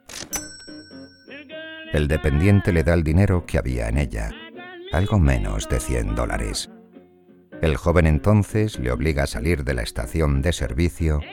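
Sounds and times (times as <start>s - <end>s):
cash register drawer clanking open: 0.0s - 0.6s
bright bell ring of a cash register: 0.3s - 1.8s
speech: 1.9s - 6.7s, 7.6s - 11.3s.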